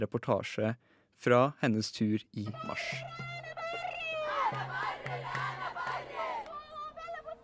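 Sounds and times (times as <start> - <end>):
speech: 0.0 - 3.3
steady low drumbeat: 2.5 - 6.1
crowd of demonstrators chanting a slogan at a march: 3.7 - 7.4.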